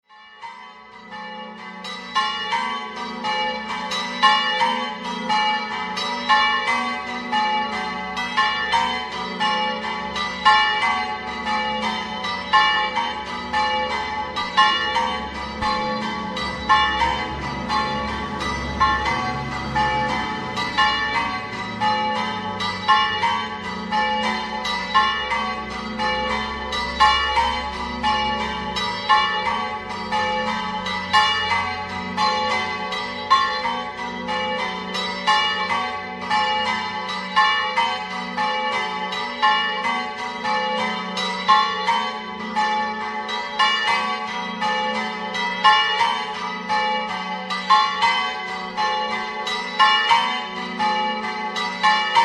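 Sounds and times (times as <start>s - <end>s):
bells ringing: 0.0s - 52.2s.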